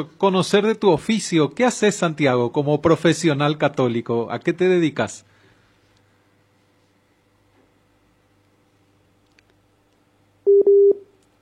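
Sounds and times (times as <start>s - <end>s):
speech: 0.0s - 5.3s
telephone busy tone after a dropped call: 10.5s - 11.1s.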